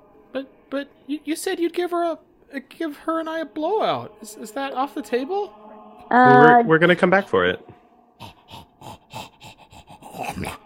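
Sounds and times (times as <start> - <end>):
speech: 0.4 - 8.3
dog panting and snorting heavily: 8.2 - 10.6.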